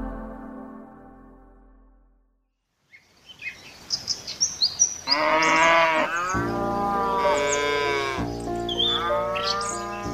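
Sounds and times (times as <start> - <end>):
cattle mooing on a hacienda: 5.1 - 10.1
farm animals bleating: 5.1 - 10.1.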